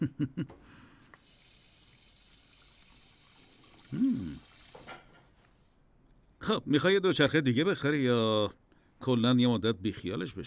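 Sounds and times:
kitchen tap water running: 1.2 - 5.2
speech: 6.5 - 10.4.

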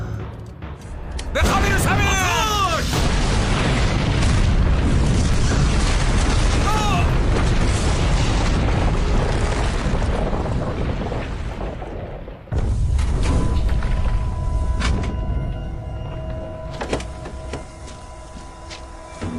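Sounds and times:
deep roar of rumbling debris: 1.3 - 19.3
C4 explosive blast: 1.4 - 15.4.

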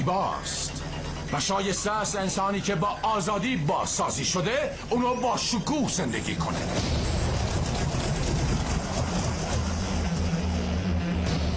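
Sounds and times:
speech: 0.0 - 7.2
aircraft engine droning and losing speed: 0.0 - 11.5.

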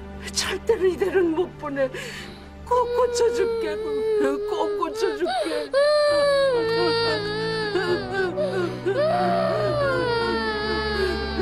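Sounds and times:
speech: 0.2 - 10.2
person crying alone with sobs and whimpers: 2.9 - 11.4.

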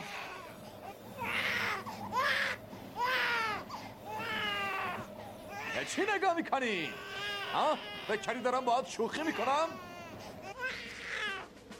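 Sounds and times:
baby crying: 0.0 - 6.1, 6.8 - 11.5
low hum: 0.0 - 11.7
speech: 5.8 - 9.9.

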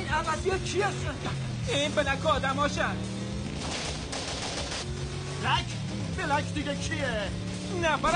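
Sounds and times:
speech: 0.1 - 3.2, 5.4 - 8.1
gunshots in a tense chase scene: 3.5 - 4.9.

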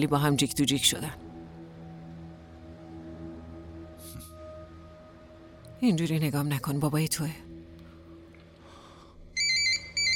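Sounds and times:
speech: 0.0 - 1.2, 5.8 - 7.5
phone ringtone with bright electronic tones: 9.4 - 10.1.

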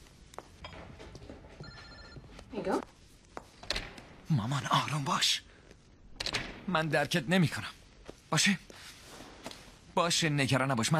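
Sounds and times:
telephone ringing: 1.6 - 2.4
speech: 2.6 - 3.0, 4.3 - 5.5, 6.7 - 8.7, 10.0 - 10.9.

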